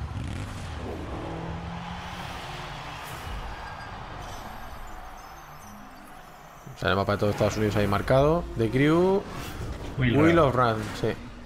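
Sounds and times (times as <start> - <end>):
motorcycle engine roaring in a racing video game trailer: 0.0 - 4.2
drag racing car engines roaring in a racing video game trailer: 0.0 - 9.1
speech: 6.8 - 11.3.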